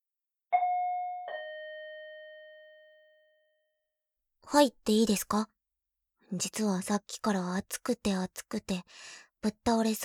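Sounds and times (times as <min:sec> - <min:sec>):
two-tone doorbell chime at a front door: 0:00.5 - 0:03.7
speech: 0:04.5 - 0:05.6, 0:06.3 - 0:10.0.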